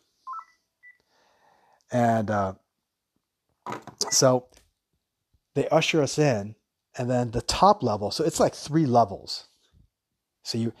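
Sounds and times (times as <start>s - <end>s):
electronic phone keypad beeps as phone is shut off: 0.3s - 1.0s
speech: 1.9s - 2.6s, 3.7s - 4.6s, 5.6s - 9.5s, 10.4s - 10.7s.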